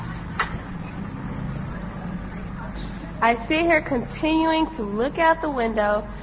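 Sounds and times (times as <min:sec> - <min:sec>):
bus engine rumble heard from inside while pulling away: 0:00.0 - 0:06.2
clunk: 0:00.3 - 0:01.0
speech: 0:03.2 - 0:06.2.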